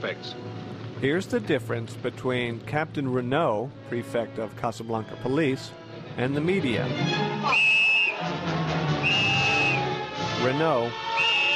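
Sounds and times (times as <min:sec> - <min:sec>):
speech: 0:00.0 - 0:07.7, 0:10.4 - 0:11.3
police whistle blasts: 0:07.4 - 0:08.3, 0:09.0 - 0:10.0, 0:10.9 - 0:11.5.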